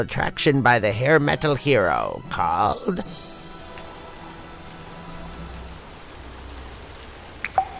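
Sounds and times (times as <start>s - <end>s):
speech: 0.0s - 3.3s
steady dense heavy rain: 2.2s - 7.7s
sharper drips or splashes: 3.0s - 7.7s.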